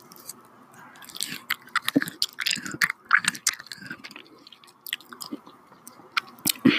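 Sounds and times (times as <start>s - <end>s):
dog chewing and eating a piece of fruit: 0.0s - 6.6s.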